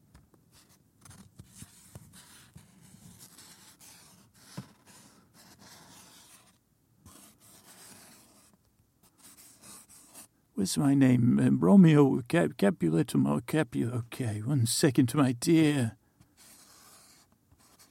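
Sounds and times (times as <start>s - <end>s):
pen or pencil scratching across paper: 0.5s - 10.3s, 16.2s - 17.8s
speech: 10.6s - 16.0s.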